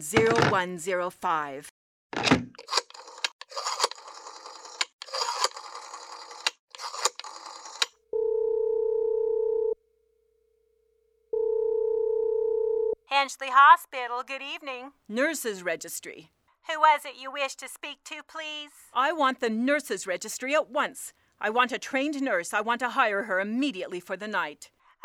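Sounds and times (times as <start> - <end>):
speech: 0.0 - 2.8, 13.2 - 25.0
telephone number being dialed: 2.6 - 8.0
telephone line tone: 8.1 - 9.8, 11.3 - 13.0.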